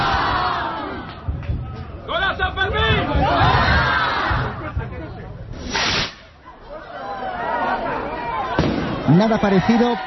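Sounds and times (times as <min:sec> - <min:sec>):
crowd of festival revellers shouting and cheering: 0:00.0 - 0:05.5, 0:06.4 - 0:10.0
sharp noisy burst of the chupinazo rocket launch: 0:05.6 - 0:06.4
speech: 0:09.2 - 0:10.0.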